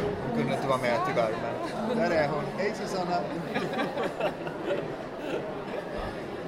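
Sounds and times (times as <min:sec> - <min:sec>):
murmur of many overlapping voices of people mingling at a book fair: 0:00.0 - 0:06.4
speech: 0:00.5 - 0:05.8
people chuckling and laughing in a crowd at a book fair: 0:03.2 - 0:06.3.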